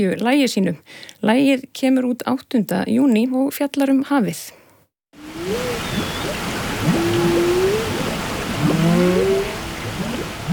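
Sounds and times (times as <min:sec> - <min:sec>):
speech: 0:00.0 - 0:04.6
constant watery hiss: 0:05.2 - 0:10.5
whale calls recorded underwater with hydrophones off northeast Iceland: 0:05.2 - 0:10.5.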